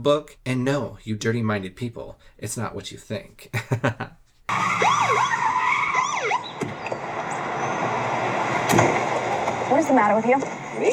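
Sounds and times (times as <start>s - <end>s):
speech: 0.0s - 5.4s, 9.7s - 10.9s
laughter: 3.6s - 4.2s
police car siren: 4.5s - 8.7s.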